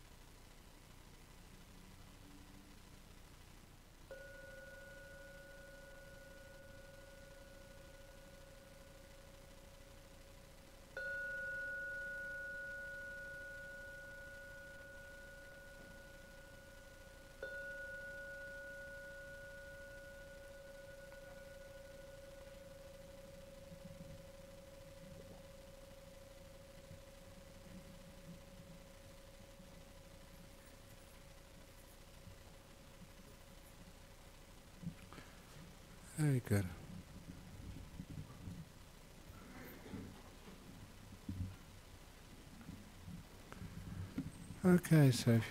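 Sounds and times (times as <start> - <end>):
low hum: 0.0 - 45.5
meditation gong ringing: 11.0 - 25.7
speech: 36.2 - 36.8, 44.7 - 45.5.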